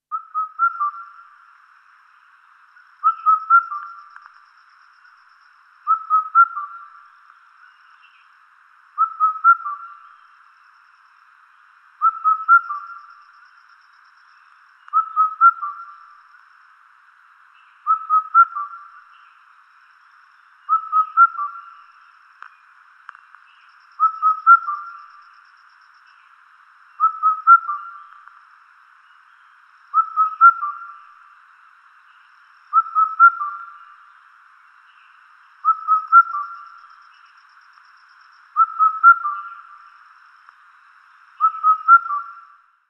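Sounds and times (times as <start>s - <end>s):
Indian cuckoo calling: 0.1s - 1.3s, 3.0s - 4.4s, 5.9s - 7.0s, 9.0s - 10.2s, 12.0s - 13.5s, 14.8s - 16.2s, 17.8s - 19.3s, 20.7s - 21.9s, 24.0s - 25.4s, 27.0s - 28.3s, 29.9s - 31.2s, 32.7s - 34.0s, 35.6s - 37.4s, 38.5s - 39.9s, 41.4s - 42.6s.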